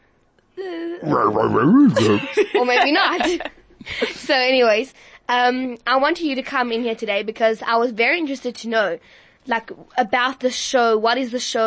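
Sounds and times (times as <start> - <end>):
speech: 0.6 - 11.6
person imitating a tiger growl in a studio: 1.0 - 2.4
laughter: 1.1 - 4.4.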